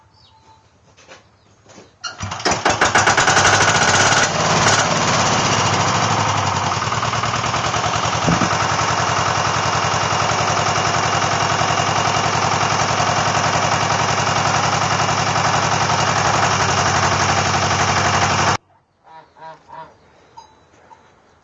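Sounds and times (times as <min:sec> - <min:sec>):
mower engine starting and running: 0:02.1 - 0:18.6.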